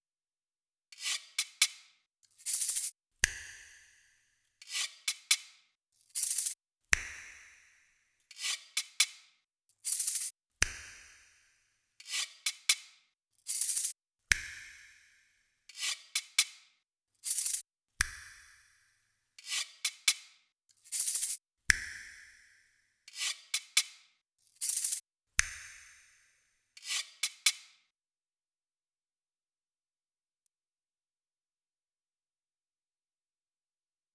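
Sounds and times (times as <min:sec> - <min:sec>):
percussion: 0:01.0 - 0:16.6, 0:17.2 - 0:27.8.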